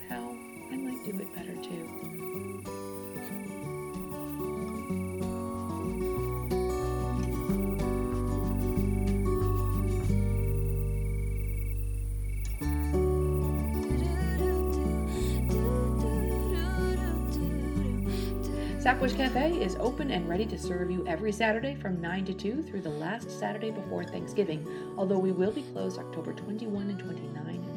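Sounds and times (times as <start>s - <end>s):
crickets chirping at night: 0.0s - 21.2s
deep humming tonal drone: 2.2s - 21.8s
speech: 18.9s - 27.2s.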